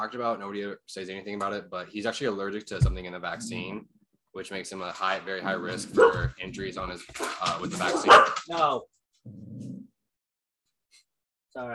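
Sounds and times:
speech: 0.0s - 9.7s, 11.6s - 11.7s
dog barking: 5.9s - 6.3s, 7.9s - 8.4s.

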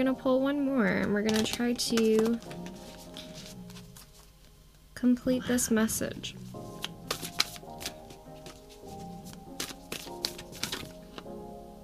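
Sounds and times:
speech: 0.0s - 2.8s, 5.0s - 6.6s
soft steady music: 0.0s - 11.8s
deck of cards shuffling: 1.0s - 4.5s, 6.5s - 11.3s.

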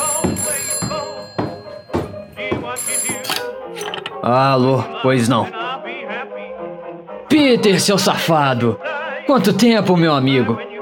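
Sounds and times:
telephone ringing: 0.0s - 4.2s
speech: 4.2s - 5.6s, 7.4s - 10.7s.

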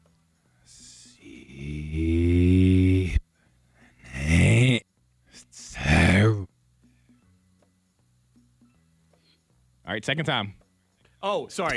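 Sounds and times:
voice singing breathy phrases played in reverse: 0.5s - 6.5s
speech: 10.0s - 10.6s, 11.2s - 11.7s.

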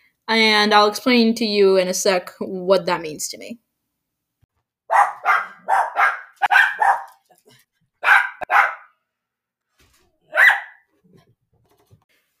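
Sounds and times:
speech: 0.3s - 3.6s
dogs barking: 4.9s - 7.3s, 8.0s - 9.0s, 10.3s - 10.9s.

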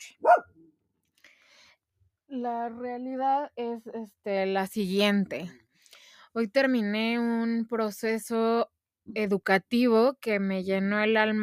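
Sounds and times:
dog barking at night: 0.0s - 0.5s
speech: 2.3s - 5.6s, 6.3s - 11.4s.

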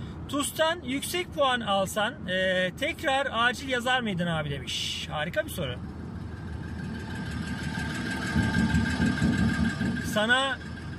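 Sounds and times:
speech: 0.3s - 5.9s, 10.1s - 10.7s
heavy military truck engine running: 5.4s - 10.9s.

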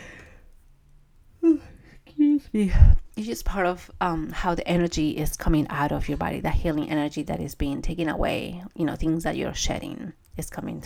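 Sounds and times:
long breathy yawn ending in a voiced tonal sound: 1.4s - 1.8s
speech: 2.4s - 10.8s.

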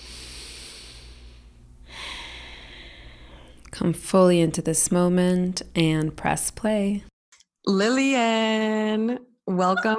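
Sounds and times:
slow deep breath: 0.0s - 3.7s
speech: 3.8s - 7.1s, 7.7s - 9.9s.

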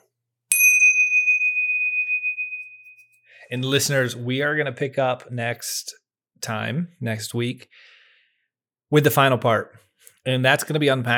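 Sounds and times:
bell ding from an iPhone: 0.5s - 3.2s
speech: 3.5s - 7.9s, 8.9s - 11.1s.

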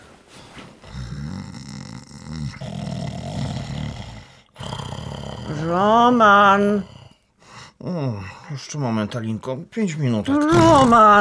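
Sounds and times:
person snoring loudly while asleep: 0.8s - 7.2s
speech: 2.4s - 2.9s, 5.5s - 7.0s, 7.8s - 11.1s.

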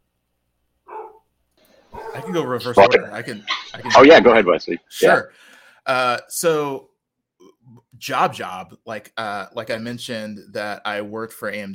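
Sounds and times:
dog barking: 0.9s - 1.2s, 1.9s - 2.3s
speech: 2.2s - 6.9s, 7.7s - 11.7s.

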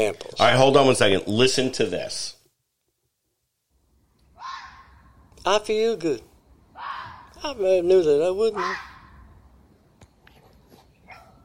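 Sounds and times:
speech: 0.0s - 2.4s, 5.4s - 8.9s
low steady hiss: 0.0s - 11.4s
small chihuahua barking and yipping: 4.4s - 5.0s, 6.8s - 7.3s, 8.6s - 9.1s, 11.1s - 11.4s.

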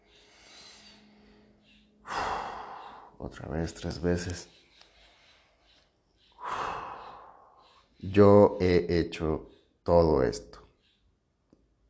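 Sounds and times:
deep inhalation during a guided breathing exercise: 2.0s - 3.2s, 6.4s - 7.9s
speech: 3.2s - 4.6s, 8.0s - 10.6s.

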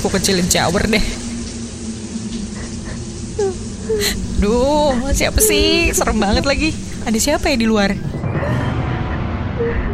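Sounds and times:
speech: 0.0s - 1.3s, 4.0s - 8.6s
steady low hum: 0.0s - 9.9s
woman crying and wailing: 3.4s - 6.8s.

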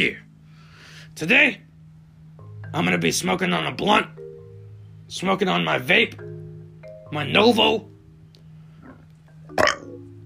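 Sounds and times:
speech: 0.0s - 0.2s, 1.2s - 1.6s, 2.7s - 4.2s, 5.1s - 6.3s, 7.1s - 7.9s
faint low hum: 0.0s - 10.2s
burp: 8.8s - 10.0s.

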